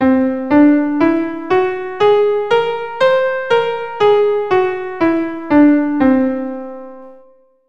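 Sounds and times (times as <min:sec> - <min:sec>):
keyboard playing C whole tone scale: 0:00.0 - 0:07.3.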